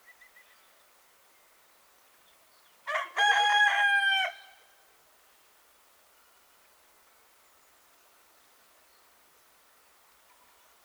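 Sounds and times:
rooster crowing: 2.9 - 4.6.

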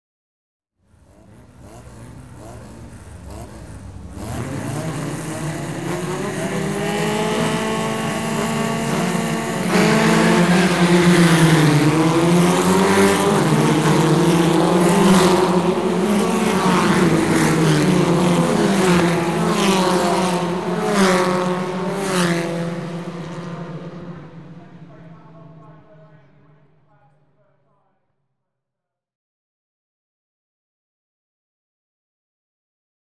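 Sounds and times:
Formula racing cars at motor racing start line: 0.8 - 27.1.

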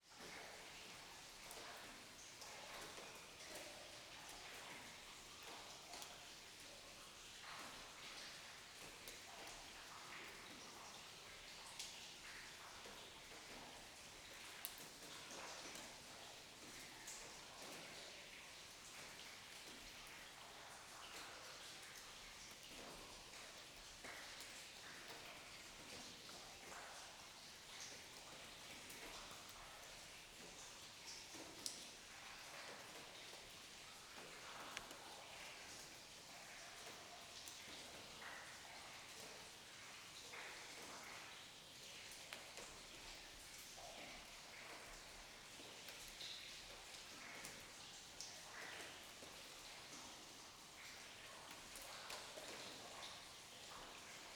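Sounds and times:
distant running water in an underground zinc mine cave: 0.1 - 54.3.

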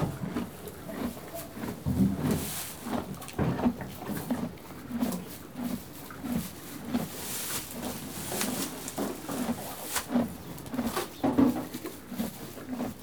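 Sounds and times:
horse rustling and shuffling: 0.0 - 4.2, 6.2 - 12.1
horse chewing hay: 0.0 - 13.0.

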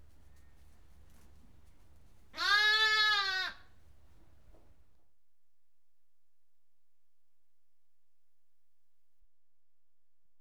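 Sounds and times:
lamb bleating in a barn: 2.4 - 3.6.

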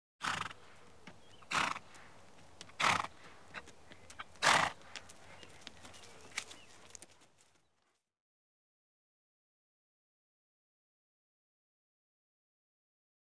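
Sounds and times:
horse snorting: 0.2 - 2.0, 2.6 - 6.4
horse approaching: 0.2 - 8.0.

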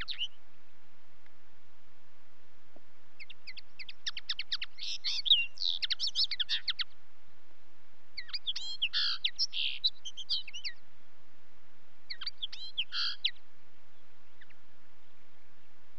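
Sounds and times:
common linnet twittering song: 0.0 - 0.4, 3.2 - 7.0, 8.2 - 10.8, 12.1 - 15.9.

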